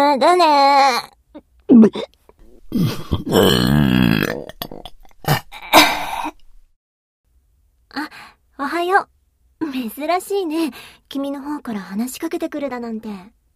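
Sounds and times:
speech: 0.1s - 4.5s, 8.0s - 13.4s
short throaty belches and long croaking belch: 1.7s - 6.5s.

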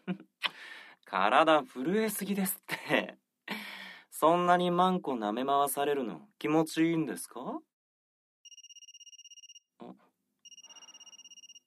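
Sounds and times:
speech: 1.1s - 3.0s, 4.2s - 7.7s
mobile phone ringing with a buzzy electronic trill: 8.5s - 9.7s, 10.4s - 11.6s.

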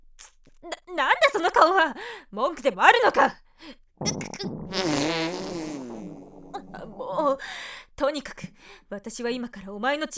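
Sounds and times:
speech: 0.6s - 5.4s, 6.7s - 10.1s
long raspy fart: 4.0s - 7.2s.

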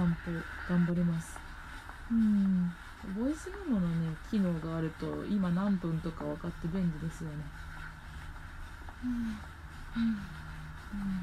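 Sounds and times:
low hum: 0.0s - 11.2s
speech: 0.2s - 1.4s, 2.1s - 7.7s, 9.0s - 11.2s
person breathing heavily while walking: 8.6s - 11.2s.

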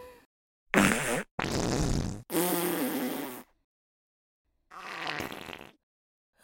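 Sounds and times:
broad rasping fart bursts: 0.7s - 3.5s, 4.7s - 5.8s.

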